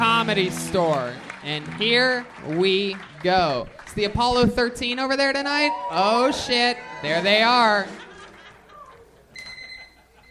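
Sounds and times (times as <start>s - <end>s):
speech: 0.3s - 8.1s
laughter: 6.3s - 10.2s
electronic alarm clock beeping: 9.4s - 10.2s.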